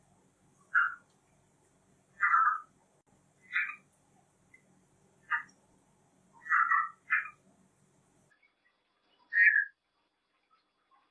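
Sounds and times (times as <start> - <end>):
low background hum: 0.0 - 11.1
red-eyed tree frog clucking: 0.6 - 1.1, 2.2 - 2.8, 3.4 - 3.9, 5.2 - 5.6, 6.4 - 7.4, 9.2 - 9.8.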